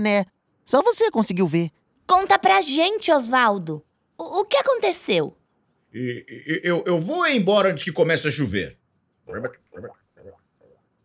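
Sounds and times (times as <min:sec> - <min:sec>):
speech: 0:00.0 - 0:10.4
frog croaking: 0:09.2 - 0:10.9.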